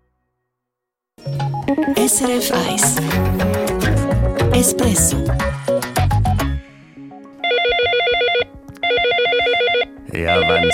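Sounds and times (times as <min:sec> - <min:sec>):
speech: 0:01.8 - 0:05.8
electronic telephone trilling ring: 0:07.4 - 0:10.7.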